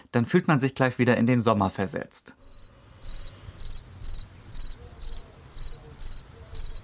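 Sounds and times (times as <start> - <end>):
speech: 0.1 - 2.5
crickets chirping: 2.4 - 6.8.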